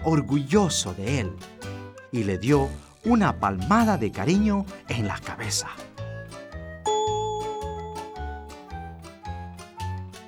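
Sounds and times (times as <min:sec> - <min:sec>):
speech: 0:00.0 - 0:05.9
loud bell ringing: 0:06.9 - 0:08.6.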